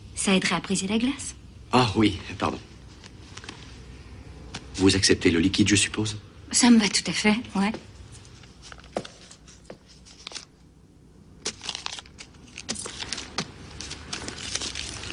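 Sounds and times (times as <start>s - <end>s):
speech: 0.2s - 2.7s, 4.8s - 7.9s
fax papers crumpling as someone sits on them: 8.3s - 10.5s, 11.4s - 15.1s.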